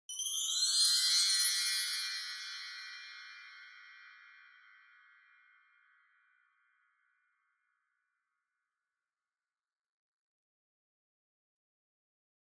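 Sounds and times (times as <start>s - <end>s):
low wind chimes with reverb: 0.1s - 6.2s.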